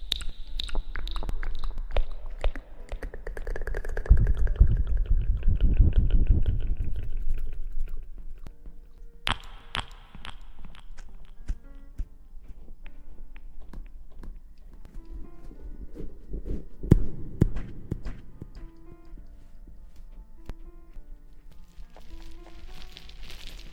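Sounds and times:
wet mouth sounds: 0:00.0 - 0:08.5, 0:09.3 - 0:12.1.

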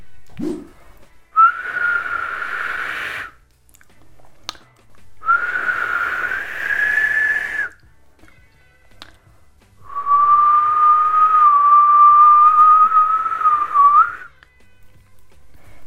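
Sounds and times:
person whistling a tune: 0:01.4 - 0:03.4, 0:05.2 - 0:07.8, 0:09.8 - 0:14.4.

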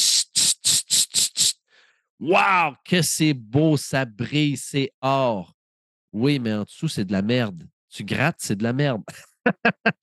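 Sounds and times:
voice imitating a can of gold spray paint hissing: 0:00.0 - 0:01.6
speech: 0:02.2 - 0:10.0
laughter: 0:09.1 - 0:10.0.

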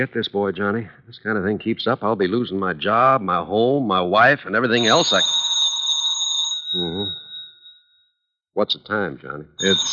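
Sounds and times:
speech: 0:00.0 - 0:05.4, 0:08.6 - 0:09.9
telephone bell ringing with a bright metallic tone: 0:04.8 - 0:08.1, 0:09.6 - 0:09.9.

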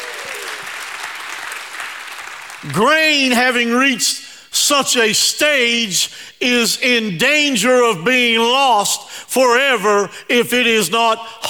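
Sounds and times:
faint cheering: 0:00.0 - 0:00.9
audience applause: 0:00.0 - 0:02.8
speech: 0:02.6 - 0:11.4.

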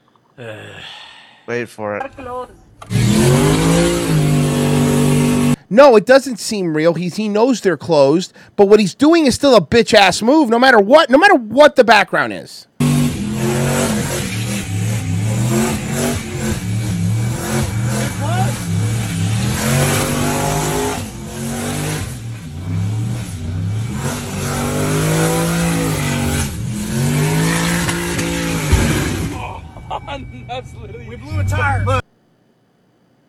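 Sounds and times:
speech: 0:00.4 - 0:03.0, 0:05.7 - 0:12.7, 0:30.5 - 0:32.0
car engine revving hard during a burnout: 0:02.1 - 0:05.6, 0:12.8 - 0:32.0
tires screeching during a burnout: 0:02.1 - 0:05.6, 0:12.8 - 0:32.0.

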